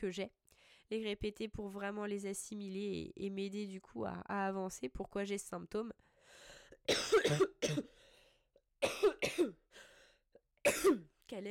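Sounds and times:
speech: 0.0s - 8.1s, 8.8s - 9.9s, 10.6s - 11.5s
harsh coughing from throat irritation: 6.9s - 7.9s, 8.8s - 9.6s, 10.6s - 11.1s.

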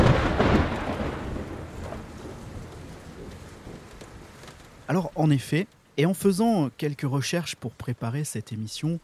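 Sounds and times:
deep rumble of thunder rolling: 0.0s - 4.4s
steady rain hissing in a thunderstorm: 0.0s - 9.0s
speech: 4.9s - 9.0s.

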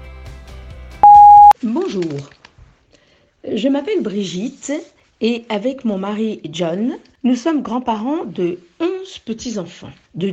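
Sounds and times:
answering machine style electronic beep: 1.0s - 1.6s
speech: 1.6s - 2.4s, 3.5s - 10.3s.

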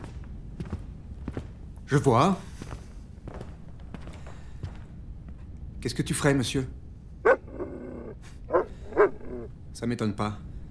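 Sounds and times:
speech: 1.9s - 2.5s, 5.8s - 6.8s, 9.8s - 10.5s
dog barking: 7.2s - 9.5s.

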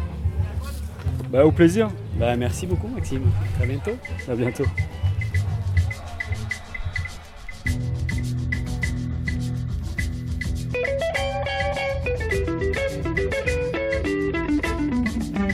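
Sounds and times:
thick looping bassline: 0.0s - 15.5s
speech: 1.3s - 5.0s
big beat remix of a 1950s jazz song: 2.2s - 15.5s.

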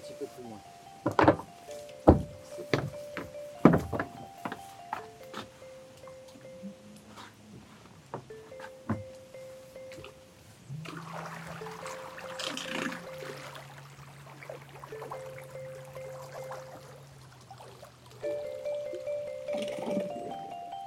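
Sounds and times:
small boat creaking: 0.0s - 6.7s, 8.2s - 20.8s
speech: 0.2s - 1.4s
hollow thuds and knocks of people stepping aboard a small boat: 1.0s - 5.6s, 8.1s - 9.1s.

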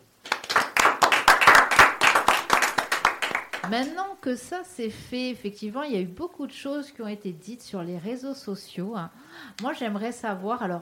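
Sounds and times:
small group of people applauding after a live broadcast: 0.2s - 4.0s
speech: 3.7s - 10.7s.

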